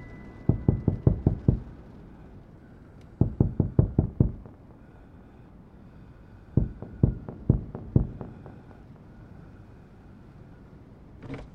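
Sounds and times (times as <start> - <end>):
firm knocking on a door: 0.5 - 1.6, 3.2 - 4.4, 6.6 - 8.4.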